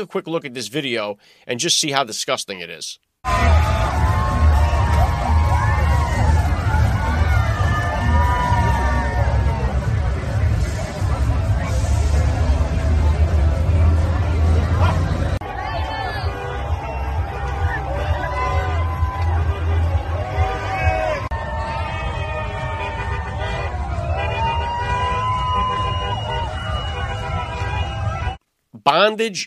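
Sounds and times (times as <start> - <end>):
speech: 0.0 - 3.8, 28.8 - 29.4
scattered shouts and whoops from a parade crowd: 3.2 - 9.8, 14.8 - 28.4
dense outdoor crowd at a street parade murmuring and cheering: 3.2 - 28.4.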